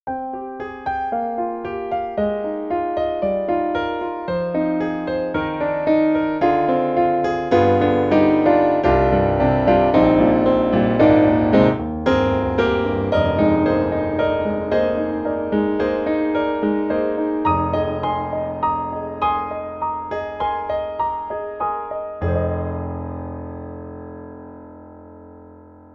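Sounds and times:
Roland SRX-11 XV-5050 grand piano: 0.0 - 25.9.

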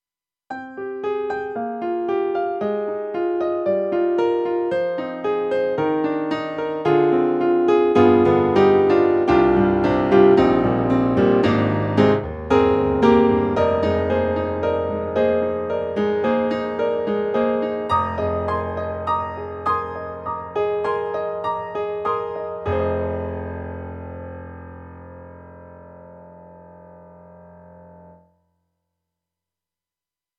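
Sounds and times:
stereo grand piano program on KORG M3 XPanded: 0.5 - 28.3.

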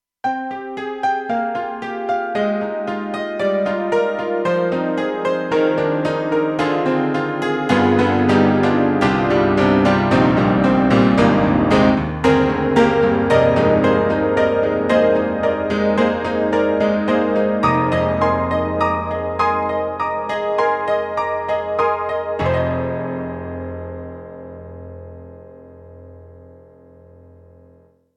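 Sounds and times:
Roland SC-8850 honky tonk piano: 0.2 - 27.9.

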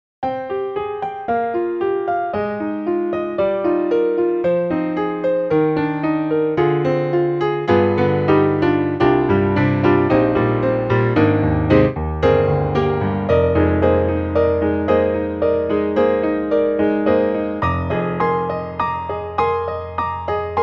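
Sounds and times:
classic grand piano: 0.2 - 20.6.

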